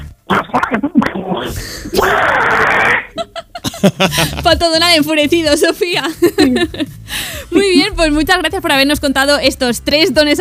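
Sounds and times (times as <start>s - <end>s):
person imitating an angry cartoon duck voice: 0.0s - 3.2s
speech: 0.5s - 10.3s
person laughing: 2.9s - 4.6s, 6.2s - 6.9s.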